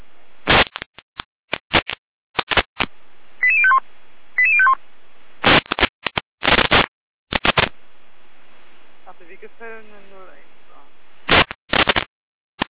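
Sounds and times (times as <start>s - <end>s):
crackling radio static and squelch noise: 0.5s - 3.8s, 5.4s - 7.8s, 9.0s - 12.6s
fire brigade radio test alert tones from the dispatch centre: 3.4s - 3.8s, 4.4s - 4.8s
speech: 9.5s - 10.5s.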